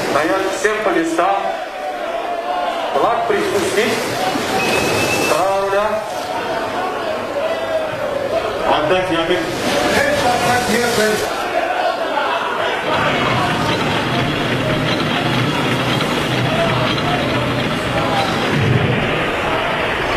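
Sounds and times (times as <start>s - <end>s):
speech: 0.1s - 1.7s, 3.0s - 5.0s, 8.7s - 11.3s
large crowd roar on the embankment: 1.1s - 8.8s, 9.4s - 20.1s.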